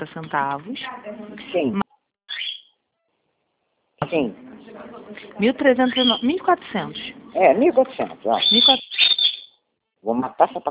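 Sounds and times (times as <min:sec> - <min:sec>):
speech: 0:00.0 - 0:01.8, 0:04.1 - 0:08.9, 0:10.0 - 0:10.7
cockatiel calling with warbling whistles and chirps: 0:02.3 - 0:02.8, 0:05.8 - 0:06.4, 0:08.3 - 0:09.6.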